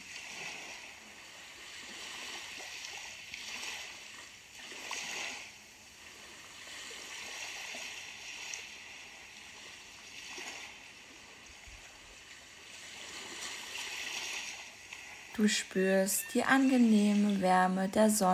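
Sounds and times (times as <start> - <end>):
sea waves washing ashore: 0.0 - 18.3
faint water splash: 1.6 - 15.6
speech: 15.4 - 18.3.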